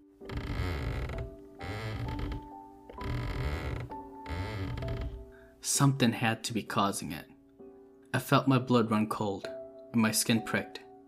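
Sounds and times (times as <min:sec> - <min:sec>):
creaking from a dark hallway: 0:00.2 - 0:05.3
speech: 0:05.7 - 0:07.3, 0:08.1 - 0:10.8.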